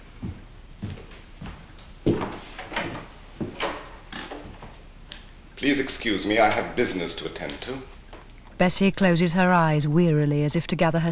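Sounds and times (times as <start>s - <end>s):
wooden door opening with knocks, creaks and scrapes: 2.1s - 4.8s
speech: 5.6s - 8.0s, 8.6s - 11.1s.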